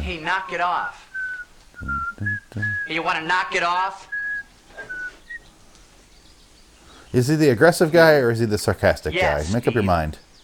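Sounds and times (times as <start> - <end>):
speech: 0.1 - 1.1, 1.8 - 4.1, 7.1 - 10.2
man whistling in a movie: 0.9 - 2.9, 4.1 - 5.4.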